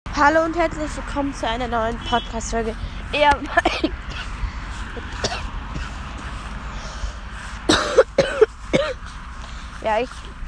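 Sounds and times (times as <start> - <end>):
speech: 0.2 - 4.4, 9.8 - 10.3
person with a slight cold coughing: 3.6 - 4.4, 5.1 - 6.0, 7.7 - 9.0
person with a slight cold clearing throat: 5.2 - 6.0, 7.7 - 9.0.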